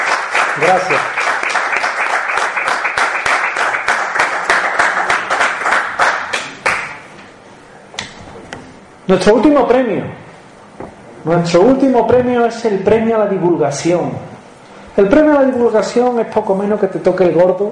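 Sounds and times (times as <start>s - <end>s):
audience applause at an awards presentation: 0.0s - 7.0s
speech: 0.6s - 1.3s, 9.1s - 10.2s, 11.2s - 14.3s, 15.0s - 17.7s.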